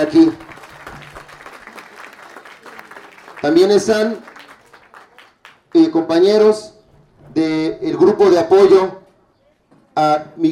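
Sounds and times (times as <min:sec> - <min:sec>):
speech: 0:00.0 - 0:00.5, 0:03.4 - 0:04.3, 0:05.8 - 0:06.7, 0:07.4 - 0:09.0, 0:10.0 - 0:10.4
audience applause at a public gathering: 0:00.0 - 0:05.9.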